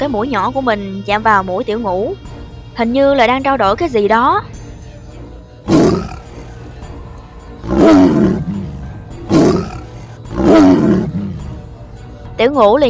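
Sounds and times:
speech: 0.0s - 4.6s, 12.4s - 12.8s
tiger roaring angrily from a large rock on the seashore: 5.7s - 6.8s, 7.6s - 11.7s.

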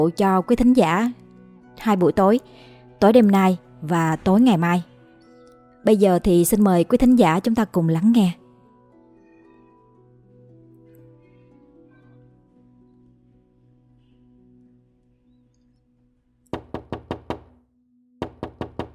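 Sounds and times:
speech: 0.0s - 1.2s, 1.8s - 4.9s, 5.8s - 8.4s
knocking on a door: 16.5s - 17.6s, 18.2s - 18.9s.

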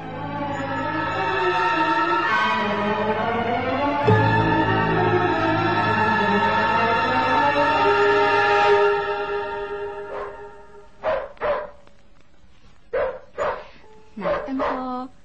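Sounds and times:
long steady droning horn-like tone: 0.0s - 11.0s
dog barking outside a suburban house: 10.1s - 11.9s, 12.9s - 15.1s.

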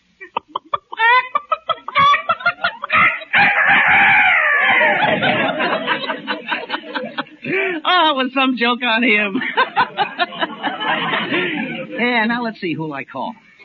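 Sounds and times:
laughter: 0.2s - 7.8s, 9.1s - 12.1s
man imitating a rooster crowing on the phone in a fix-it shop: 2.9s - 5.0s
speech: 8.1s - 9.6s, 11.3s - 13.4s.

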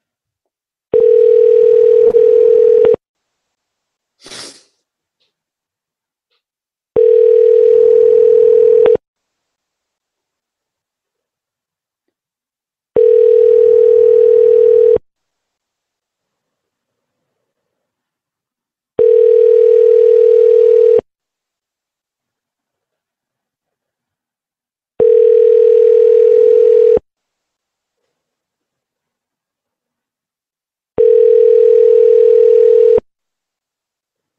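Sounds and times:
telephone ringback tone: 0.9s - 3.0s, 7.0s - 9.0s, 13.0s - 15.0s, 19.0s - 21.1s, 25.0s - 27.0s, 31.0s - 33.0s.

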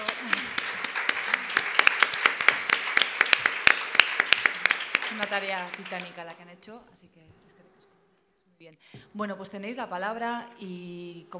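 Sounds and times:
scattered clapping from a small audience at a panel assembly: 0.0s - 6.4s
speech: 5.3s - 7.4s, 8.6s - 11.3s.

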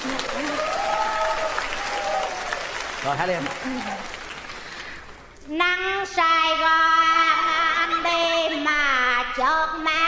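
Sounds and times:
comedy stage show audience applause: 0.0s - 5.3s
speech: 3.0s - 4.2s, 5.5s - 10.0s.

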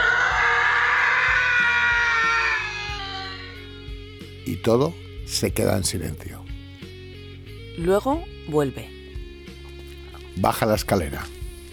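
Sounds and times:
long high-pitched scream in a house: 0.0s - 3.7s
speech: 4.6s - 6.5s, 7.8s - 9.0s, 10.4s - 11.4s.

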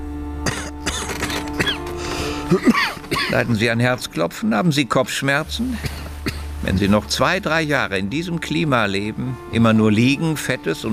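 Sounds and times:
patient coughing on request during a doctor's examination: 0.4s - 3.5s, 5.6s - 6.5s
throat clearing: 0.4s - 3.5s, 5.6s - 6.4s
speech: 2.5s - 10.9s.

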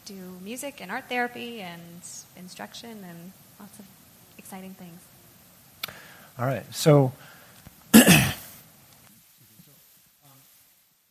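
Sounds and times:
faint hush: 0.0s - 11.0s
speech: 0.1s - 5.1s, 6.4s - 8.4s
harsh cough: 8.0s - 8.5s.

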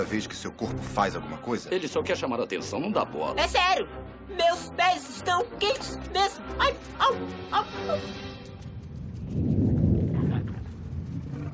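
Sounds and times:
speech: 0.0s - 8.4s
thunder rumbling: 8.5s - 11.5s.

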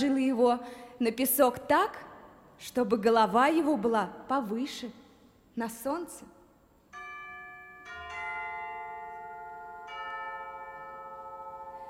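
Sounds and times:
speech: 0.0s - 5.0s, 5.6s - 6.4s
bells ringing from a tall white building: 6.9s - 11.8s.

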